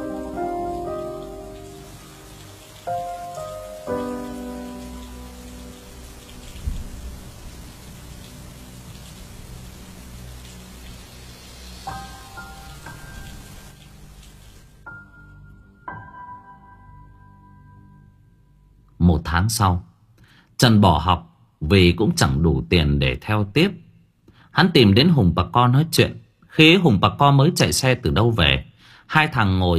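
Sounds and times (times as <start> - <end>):
rain falling outside: 0.0 - 15.4
speech: 19.2 - 19.9, 20.6 - 23.8, 24.5 - 29.7.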